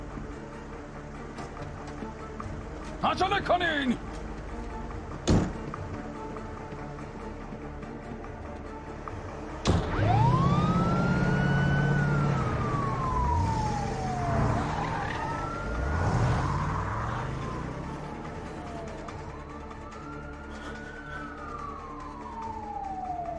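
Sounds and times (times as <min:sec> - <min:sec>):
speech: 0:03.0 - 0:04.2
ambulance siren wailing: 0:05.6 - 0:23.3
vehicle engine rumbling and pulling away: 0:09.7 - 0:19.5.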